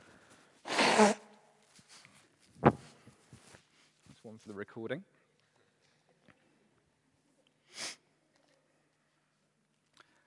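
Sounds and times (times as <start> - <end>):
sniff: 0.3 - 2.2, 7.6 - 8.2
nose blowing: 0.6 - 1.4
speech: 1.0 - 1.2, 4.4 - 5.2
faint rustling: 1.6 - 4.8.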